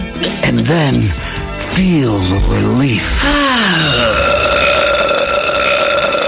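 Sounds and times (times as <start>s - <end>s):
speech: 0.6s - 4.3s
loud burp after gulping soda: 3.1s - 6.2s.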